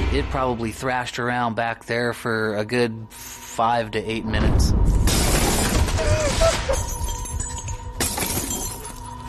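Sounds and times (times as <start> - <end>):
speech: 0.2 - 4.9
kitchen window glass shattering: 5.1 - 9.1
faint clinking glass debris: 5.1 - 9.2.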